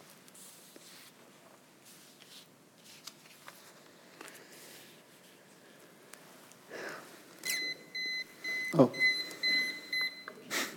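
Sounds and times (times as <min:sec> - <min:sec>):
kitchen timer alarm beeping: 0:07.4 - 0:10.4
speech: 0:08.8 - 0:09.1.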